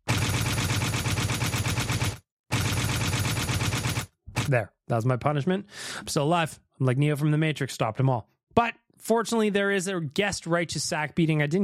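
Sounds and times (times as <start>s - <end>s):
stylized machine gun sound effect from a novelty button: 0.0s - 4.6s
speech: 4.5s - 11.6s.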